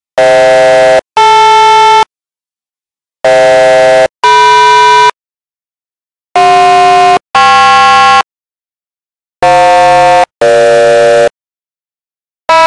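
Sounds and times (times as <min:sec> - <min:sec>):
quikcall tone: 0:00.2 - 0:02.1, 0:03.2 - 0:05.2, 0:06.4 - 0:08.3, 0:09.4 - 0:11.4, 0:12.5 - 0:12.6.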